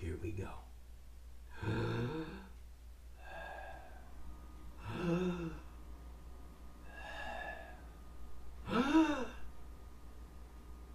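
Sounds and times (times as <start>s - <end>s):
speech: 0.2s - 0.7s
person taking deep breaths in and out: 1.4s - 5.8s, 6.8s - 9.5s.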